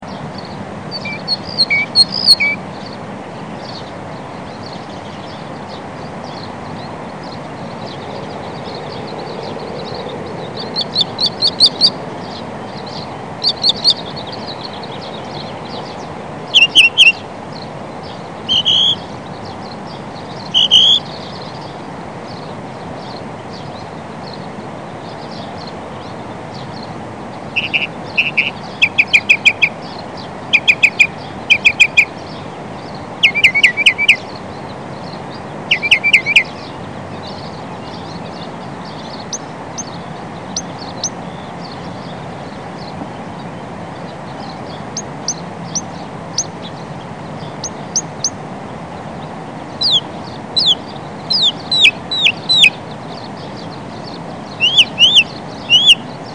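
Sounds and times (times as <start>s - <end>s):
Northern Mockingbird: 0.9s - 2.6s, 10.5s - 12.0s, 13.4s - 14.6s, 16.5s - 17.2s, 18.5s - 19.0s, 20.4s - 21.2s, 27.6s - 29.8s, 30.5s - 32.2s, 33.2s - 34.3s, 35.7s - 36.6s, 49.8s - 52.8s, 54.5s - 56.1s.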